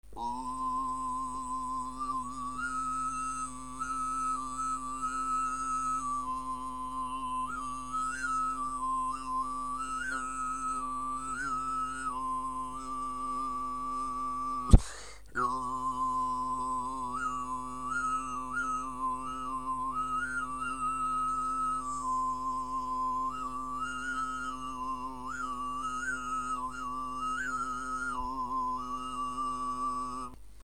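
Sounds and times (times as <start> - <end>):
deep throat voice singing a classical music adaptation: 0.1 - 30.4.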